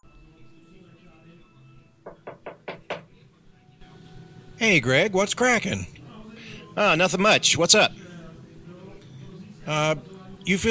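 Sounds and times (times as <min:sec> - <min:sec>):
knocking on a door: 0:02.0 - 0:03.2
speech: 0:04.6 - 0:06.0, 0:06.8 - 0:08.0, 0:09.7 - 0:10.7.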